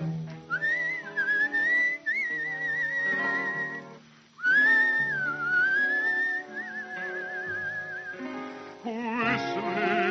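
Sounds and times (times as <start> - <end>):
soft instrumental backing music: 0.0 - 10.0
person whistling a melody: 0.5 - 8.3.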